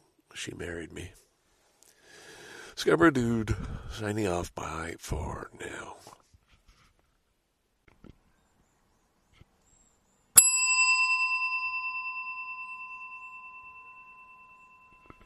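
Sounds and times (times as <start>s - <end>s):
speech: 0.4s - 1.3s, 2.8s - 6.2s
big bell ringing: 10.4s - 15.2s.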